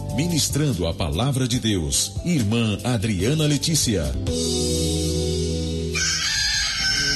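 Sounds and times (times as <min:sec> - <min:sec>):
speech: 0:00.1 - 0:04.9
rooster crowing: 0:05.9 - 0:07.1.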